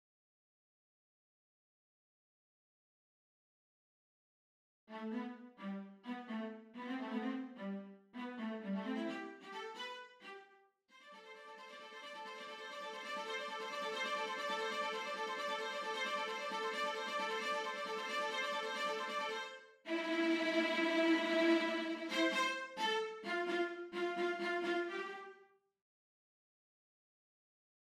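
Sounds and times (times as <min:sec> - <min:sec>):
violas playing: 0:04.9 - 0:25.4.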